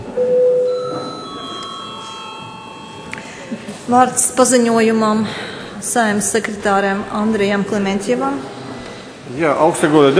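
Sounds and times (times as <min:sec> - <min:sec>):
electronic bell tone ringing in a parliamentary session: 0:00.2 - 0:04.5
speech: 0:03.9 - 0:08.6, 0:09.3 - 0:10.1.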